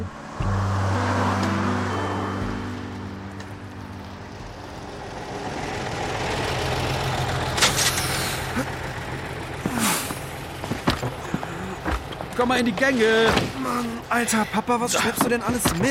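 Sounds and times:
school bus engine idling: 0.2 - 15.8
school bus air brakes hissing: 7.6 - 8.7, 9.7 - 10.3
speech: 12.4 - 15.8.

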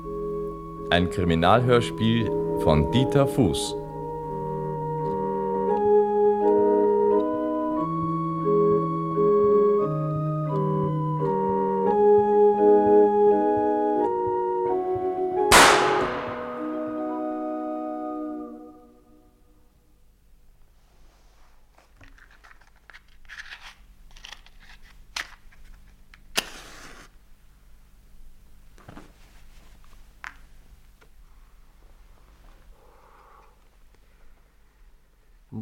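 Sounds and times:
barrel organ playing a bright steady melody: 0.0 - 19.6
speech: 0.9 - 3.8
starting pistol shot: 15.5 - 17.1
faint rustling: 28.7 - 34.8.

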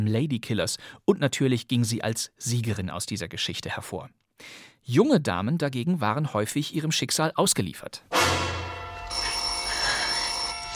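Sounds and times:
speech: 0.0 - 9.2
telephone bell ringing in a 1950s setting: 8.7 - 10.7.

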